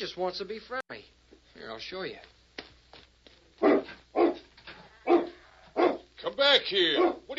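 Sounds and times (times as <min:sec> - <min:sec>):
speech: 0:00.0 - 0:02.4, 0:06.2 - 0:07.3
dog barking: 0:03.6 - 0:06.1, 0:06.9 - 0:07.3.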